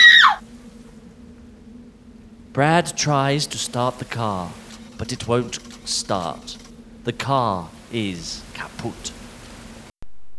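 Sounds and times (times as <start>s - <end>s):
woman screaming in fear in a stranded car: 0.0s - 0.4s
faint low hum: 0.0s - 10.3s
speech: 2.6s - 9.2s.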